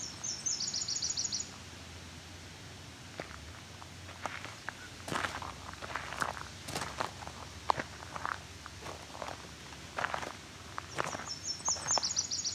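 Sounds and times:
yellow-rumped warbler singing a high rapid trill: 0.0s - 1.5s, 10.9s - 12.5s
crunching footsteps: 3.1s - 12.1s.

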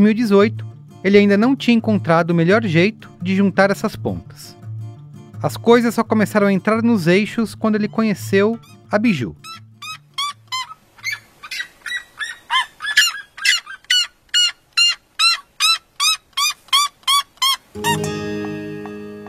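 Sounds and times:
speech: 0.0s - 4.6s, 5.4s - 9.6s
red-legged seriema loud yelping call: 8.6s - 17.7s.

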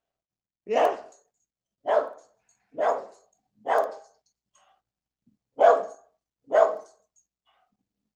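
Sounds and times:
speech: 0.7s - 1.0s
dog barking: 1.8s - 4.2s, 5.6s - 7.1s.

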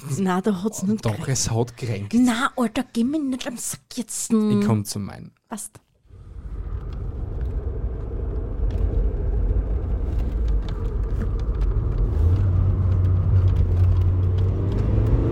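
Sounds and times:
speech: 0.0s - 5.8s
car engine accelerating: 6.1s - 15.2s
road noise whirring: 6.1s - 15.2s.

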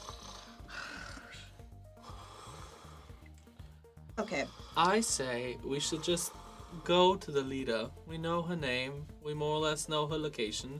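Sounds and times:
voice imitating heavy sleeping breathing and snoring of someone asleep in a tent: 0.0s - 1.5s
speech: 4.2s - 10.7s.

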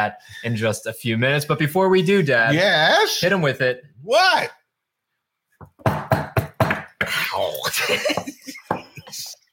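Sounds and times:
speech: 0.0s - 4.6s, 7.1s - 9.3s
knocks on a hard tabletop: 5.6s - 7.0s
laughter: 7.5s - 9.4s.

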